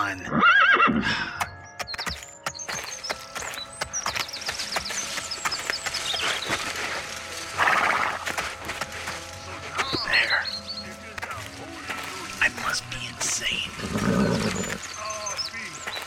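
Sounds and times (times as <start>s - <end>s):
horse whinnying while being tied up: 0.2s - 1.1s, 7.6s - 8.3s, 13.8s - 14.8s
horse hooves clopping and shuffling: 0.9s - 16.0s
horse snorting: 7.5s - 8.6s, 13.5s - 14.9s.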